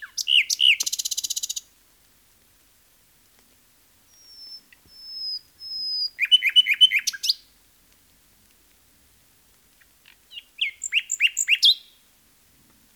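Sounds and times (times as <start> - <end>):
common nightingale singing: 0.0 - 1.7, 4.1 - 7.6, 9.8 - 12.0.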